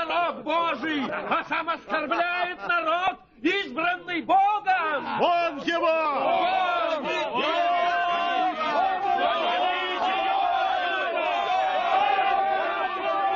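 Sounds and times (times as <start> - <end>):
laughter: 0.1 - 3.2
speech: 1.1 - 4.4
angry crowd of audience members shouting: 4.9 - 13.3.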